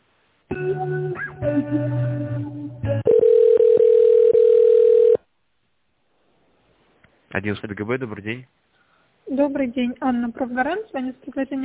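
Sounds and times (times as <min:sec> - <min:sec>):
speech: 0:00.8 - 0:03.0, 0:07.4 - 0:08.7, 0:09.3 - 0:11.6
telephone line tones while a call is transferred: 0:03.1 - 0:05.2.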